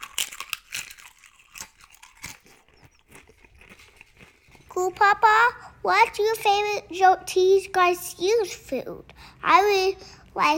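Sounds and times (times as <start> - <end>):
munching on crunchy chips: 0.0 - 5.3
speech: 4.8 - 10.5.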